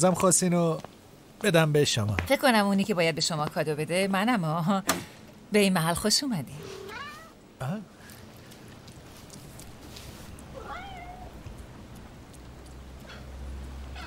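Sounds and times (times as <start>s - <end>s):
speech: 0.0s - 6.8s, 7.6s - 7.9s
steady hiss: 0.0s - 14.0s
cat meowing: 6.8s - 7.4s, 10.5s - 11.5s.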